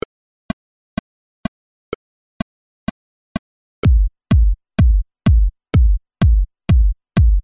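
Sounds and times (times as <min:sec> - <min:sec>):
kick drum beats: 0:03.8 - 0:07.4.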